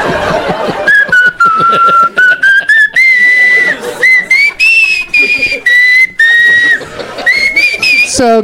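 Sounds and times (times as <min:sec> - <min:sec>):
chuckling: 0:00.0 - 0:08.1
recorded whistling of a Christmas tune: 0:00.8 - 0:08.2.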